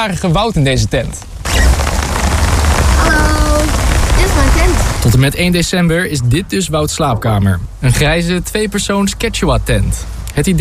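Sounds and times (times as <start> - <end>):
speech: 0.0 - 1.9, 3.1 - 10.5
heavy rain pouring in a back garden: 1.4 - 5.5.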